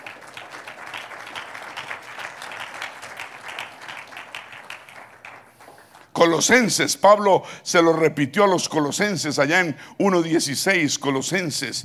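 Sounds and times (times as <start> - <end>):
audience applauding: 0.0 - 6.6
speech: 6.2 - 11.8.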